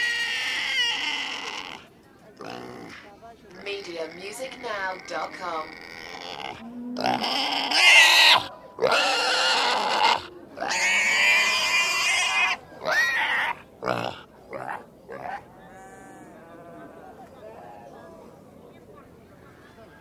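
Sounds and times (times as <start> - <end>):
pig screaming with long harsh squealing bursts: 0.0 - 1.8, 4.5 - 16.4.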